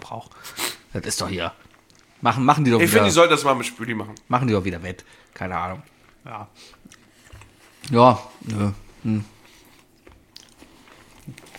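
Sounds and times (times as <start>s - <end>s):
speech: 0.1s - 7.0s, 7.8s - 9.4s
chewing food: 5.0s - 8.6s, 9.3s - 11.5s.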